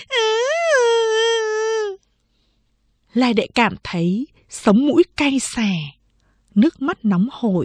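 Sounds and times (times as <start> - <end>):
young girl wailing while struggling in her sister's arms: 0.1 - 2.0
speech: 3.2 - 7.6.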